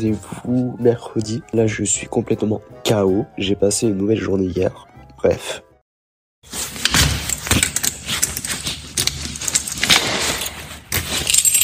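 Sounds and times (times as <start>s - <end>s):
speech: 0.0s - 5.7s
keys jangling and clinking: 7.2s - 11.6s.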